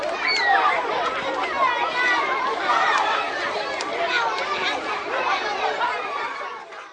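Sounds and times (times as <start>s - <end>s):
children shouting and chattering in a schoolyard: 0.0s - 6.9s
children squealing in a schoolyard: 0.2s - 0.8s.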